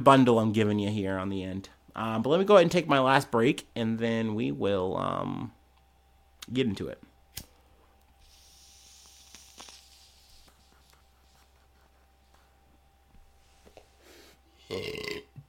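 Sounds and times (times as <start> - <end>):
speech: 0.0 - 5.6, 6.5 - 7.5, 14.7 - 15.2
loud burp: 14.6 - 15.4.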